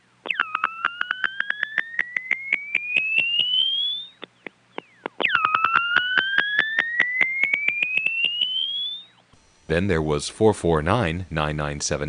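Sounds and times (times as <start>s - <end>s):
warbling telephone test circuit tone from Westbury Long Island: 0.0s - 10.0s
speech: 9.7s - 12.0s.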